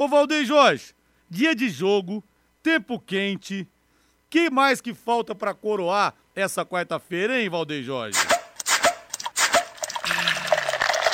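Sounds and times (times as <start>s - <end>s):
speech: 0.0s - 3.7s, 4.3s - 8.4s
beer pouring into a glass: 9.8s - 11.1s.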